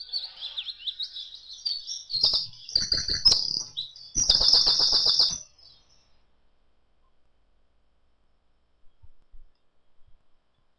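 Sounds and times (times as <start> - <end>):
small birds chirping and whistling: 0.0 - 6.1
bird wings fluttering: 4.2 - 5.4.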